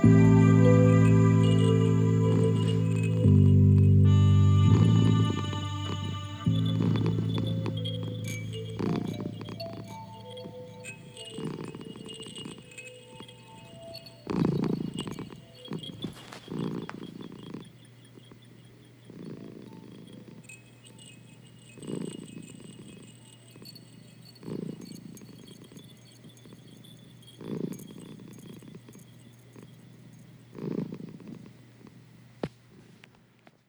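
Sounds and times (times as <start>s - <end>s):
purring: 0.0s - 33.3s.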